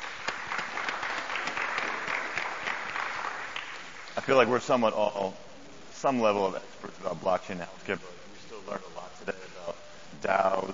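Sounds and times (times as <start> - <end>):
audience applauding at a conference session: 0.0 - 4.5
speech: 4.2 - 5.4, 6.0 - 9.4, 10.2 - 10.7.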